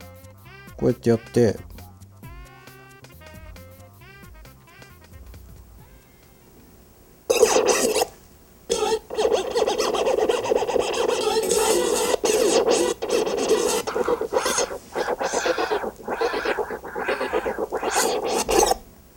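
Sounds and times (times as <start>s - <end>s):
speech: 0.8s - 1.7s
turntable scratching from a DJ app: 7.3s - 8.1s, 8.7s - 18.8s.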